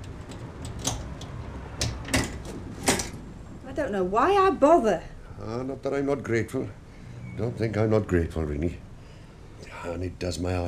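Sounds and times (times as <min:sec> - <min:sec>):
front door lock clicks and clunks being unlocked and opened: 0:00.0 - 0:03.2
speech: 0:03.8 - 0:06.8, 0:07.4 - 0:08.8, 0:09.8 - 0:10.6.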